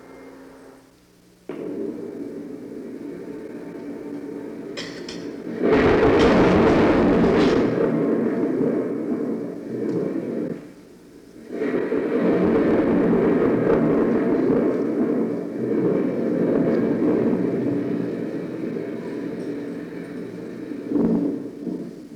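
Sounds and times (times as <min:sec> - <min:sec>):
long rolling rumble of thunder: 0:01.7 - 0:10.8, 0:11.6 - 0:22.0.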